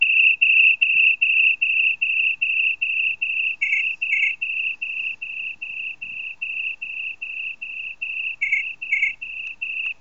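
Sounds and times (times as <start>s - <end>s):
Nokia 3510i cicada ringtone: 0.0s - 9.9s.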